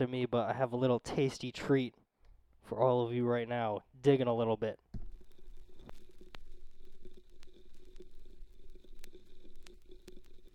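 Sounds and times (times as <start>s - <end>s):
speech: 0.0s - 2.0s, 2.6s - 4.8s
faint steady hiss: 0.0s - 10.5s
vinyl record crackle: 4.1s - 10.5s
vinyl record pops and clicks: 4.9s - 10.5s.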